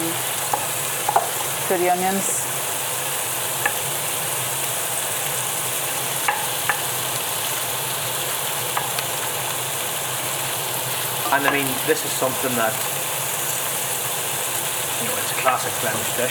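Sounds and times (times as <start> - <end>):
meat searing in a hot pan: 0.0 - 16.2
speech: 1.7 - 2.4, 11.3 - 12.9, 15.4 - 16.2.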